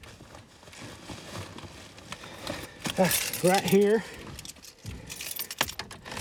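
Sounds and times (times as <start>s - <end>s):
bunch of car keys jangling: 2.9s - 6.1s
speech: 3.0s - 4.2s.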